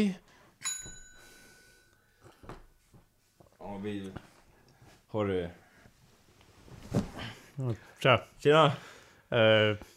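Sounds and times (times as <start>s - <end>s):
speech: 0.0s - 0.2s, 3.7s - 4.3s, 5.1s - 5.6s, 6.9s - 9.9s
small bell ringing like a wedding bell: 0.6s - 2.0s
faint rustling and soft handling noises: 2.2s - 8.0s.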